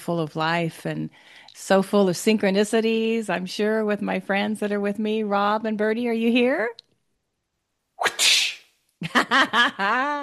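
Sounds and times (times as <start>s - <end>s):
speech: 0.0s - 6.9s, 9.0s - 10.2s
voice imitating a whip crack: 8.0s - 8.6s.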